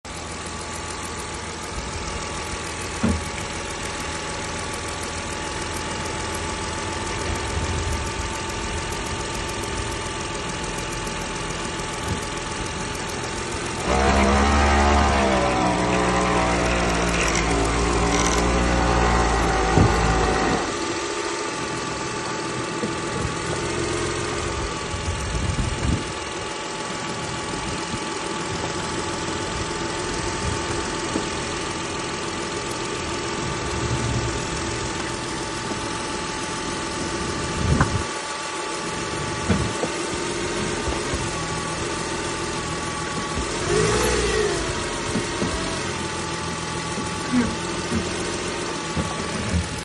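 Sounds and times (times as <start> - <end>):
Mercedes W204 C300 strange engine noise when cold: 0.0 - 49.8
bump: 13.8 - 20.8.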